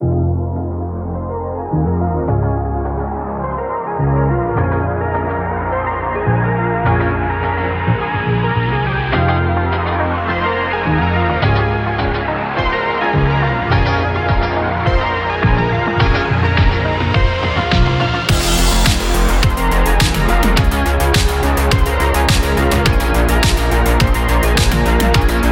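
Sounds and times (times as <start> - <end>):
synthwave music: 0.0 - 25.5.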